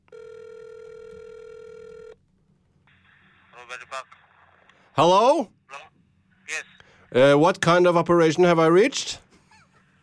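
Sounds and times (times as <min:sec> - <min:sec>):
telephone ringback tone during an outgoing call: 0:00.1 - 0:02.2
speech: 0:03.6 - 0:04.2, 0:05.0 - 0:05.9, 0:06.5 - 0:09.2.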